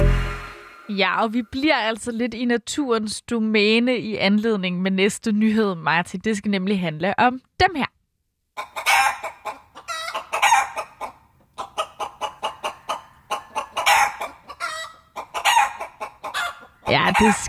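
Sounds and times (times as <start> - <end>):
speech: 0.9 - 8.0, 8.6 - 9.6, 16.9 - 17.4
flock of chickens clucking: 8.6 - 17.4.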